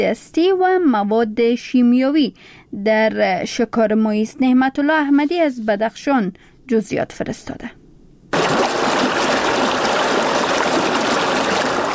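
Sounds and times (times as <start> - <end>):
speech: 0.0 - 7.8
river water flowing over rocks: 8.4 - 11.9.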